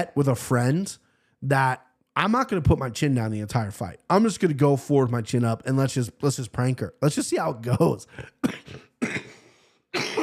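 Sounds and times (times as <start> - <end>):
speech: 0.0 - 8.8
raspy hacking cough: 8.1 - 10.2.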